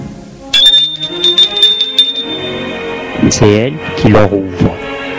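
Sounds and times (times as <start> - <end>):
metallic doorbell ringing at an old townhouse on a Paris boulevard: 0.5 - 2.9
speech: 3.2 - 4.8.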